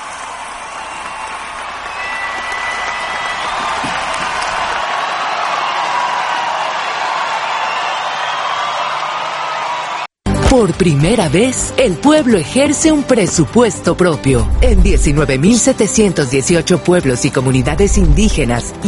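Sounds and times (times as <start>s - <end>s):
large crowd applauding: 0.0s - 10.1s
speech: 10.5s - 18.8s.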